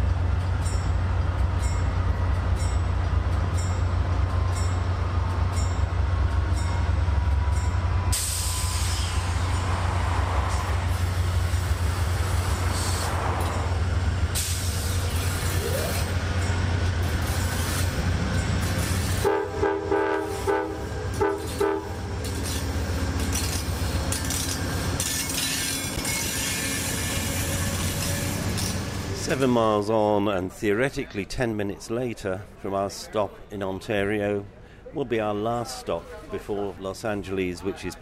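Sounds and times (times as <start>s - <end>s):
rumble inside a moving passenger train car: 0.0s - 30.9s
speech: 29.3s - 37.9s.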